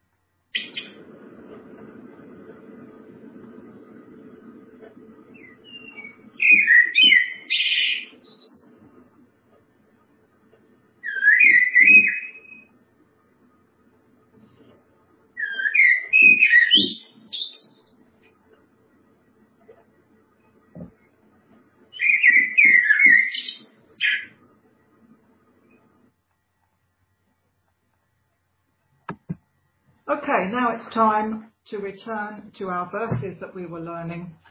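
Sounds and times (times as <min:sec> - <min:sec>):
blackbird singing: 0:05.4 - 0:08.7, 0:11.0 - 0:12.6, 0:15.4 - 0:17.8, 0:22.0 - 0:24.3
speech: 0:30.3 - 0:34.4.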